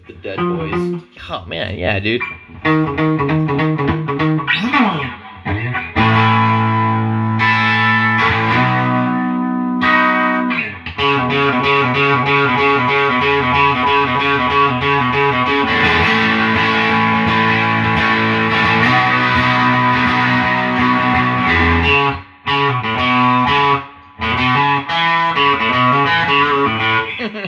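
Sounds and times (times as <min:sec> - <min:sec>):
distorted 1970s-style electric guitar playing rock and roll: 0:00.0 - 0:01.2, 0:02.2 - 0:27.4
speech: 0:00.2 - 0:03.0
laughter: 0:26.8 - 0:27.4.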